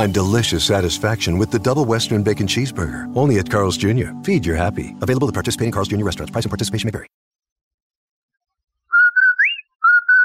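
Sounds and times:
speech: 0.0s - 7.2s
whistled jingle: 8.9s - 10.2s.

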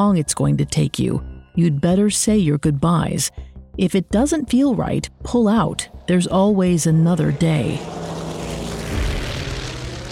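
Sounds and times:
speech: 0.0s - 8.2s
propeller-plane engine drone of a plane flying to Dera Ghazi Khan, Pakistan: 3.4s - 10.1s.

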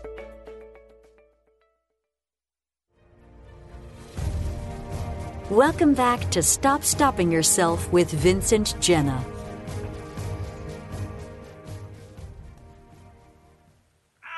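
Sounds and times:
show music playing: 3.0s - 13.7s
speech: 5.5s - 9.3s.

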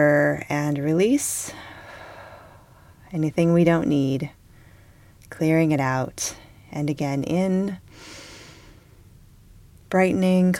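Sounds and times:
speech: 0.0s - 1.7s, 3.1s - 4.4s, 5.3s - 8.2s, 9.9s - 10.5s
slow deep breath during a guided meditation: 1.5s - 3.0s, 4.5s - 5.2s, 7.9s - 9.1s.

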